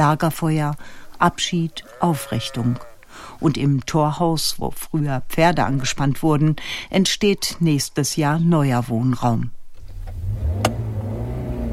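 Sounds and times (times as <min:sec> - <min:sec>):
speech: 0:00.0 - 0:09.6
car engine humming driving away from a farmyard in the rural Münsterland: 0:09.7 - 0:11.7.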